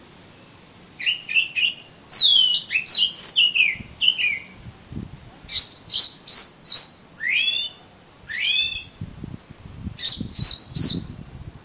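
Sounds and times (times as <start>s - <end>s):
faint steady tone: 0.0s - 11.6s
Oriental magpie-robin song: 1.0s - 4.6s, 5.5s - 9.0s, 10.0s - 11.2s.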